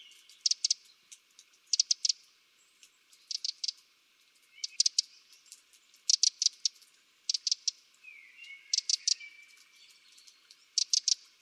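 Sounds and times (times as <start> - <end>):
Eurasian wren Troglodytes troglodytes giving hard clicking calls: 0.0 - 11.4.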